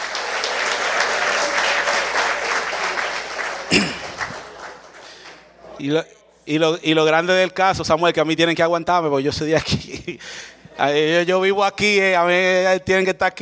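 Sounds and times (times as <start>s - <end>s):
church congregation applauding: 0.0s - 5.5s
speech: 5.8s - 13.4s.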